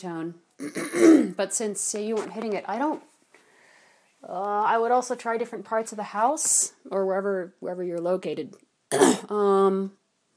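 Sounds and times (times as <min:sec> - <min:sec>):
speech: 0:00.0 - 0:03.1, 0:04.2 - 0:10.0
person coughing: 0:00.6 - 0:01.4, 0:08.9 - 0:09.3.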